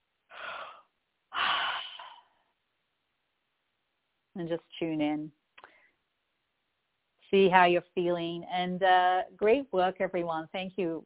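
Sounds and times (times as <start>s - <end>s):
deep breaths during a guided relaxation exercise: 0.3s - 2.6s, 5.6s - 6.0s
speech: 4.4s - 5.4s, 7.3s - 11.0s.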